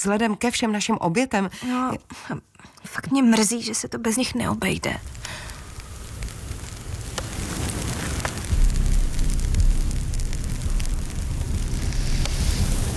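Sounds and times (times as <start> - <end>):
speech: 0.0 - 5.5
fire crackling and popping: 4.5 - 12.9.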